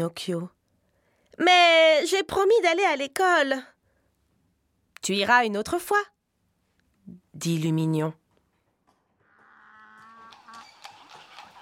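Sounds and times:
speech: 0.0s - 0.6s, 1.4s - 3.7s, 5.0s - 6.2s, 7.1s - 8.2s
donkey hooves clattering: 8.8s - 11.6s
donkey braying: 9.2s - 11.6s
cart pulled by small donkeys clattering: 10.2s - 11.6s.

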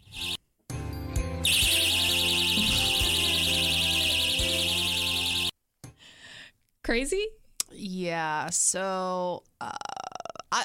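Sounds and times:
shrill electronic personal alarm on anti-assault safety pants wailing: 1.4s - 5.5s
speech: 6.9s - 9.9s.

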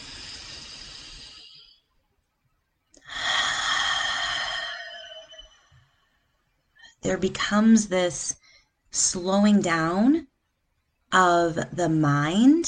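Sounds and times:
slow deep breaths during a guided breathing exercise: 0.0s - 2.0s, 3.0s - 7.0s, 8.4s - 8.9s
speech: 7.0s - 10.3s, 11.1s - 12.6s.

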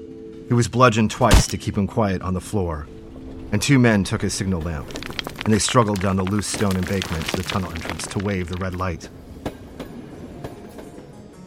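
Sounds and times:
speech: 0.5s - 9.2s
train rumbling on rails: 9.0s - 11.4s.

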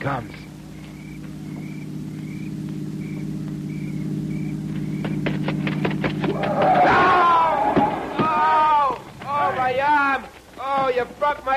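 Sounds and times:
speech: 0.0s - 0.4s, 11.0s - 11.5s
faint beeps: 0.0s - 5.9s
low steady engine drone: 0.0s - 10.6s
loud excited voices: 6.3s - 11.5s.

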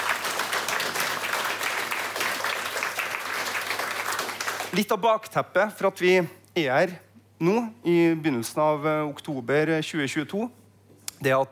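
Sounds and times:
audience applause: 0.0s - 4.8s
speech: 4.7s - 10.6s, 11.2s - 11.5s.

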